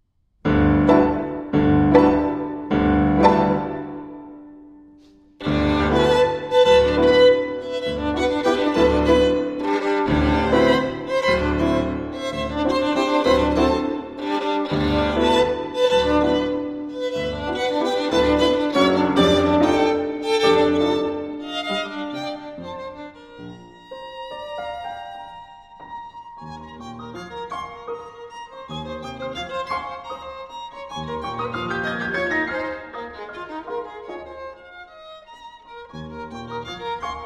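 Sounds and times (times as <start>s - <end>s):
violin and piano waltz: 0.8s - 4.3s, 5.4s - 37.2s.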